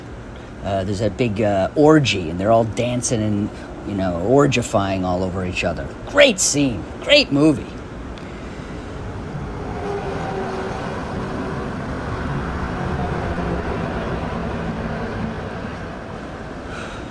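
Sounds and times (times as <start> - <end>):
road noise and low rumble of traffic: 0.0 - 17.0
speech: 0.6 - 7.8
cars rushing past: 8.2 - 17.0.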